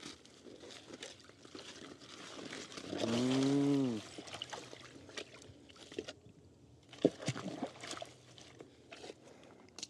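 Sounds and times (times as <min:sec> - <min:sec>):
irrigation water flowing through opened channel gate: 0:00.0 - 0:09.8
knocks and splashes: 0:00.6 - 0:06.2, 0:06.9 - 0:09.0.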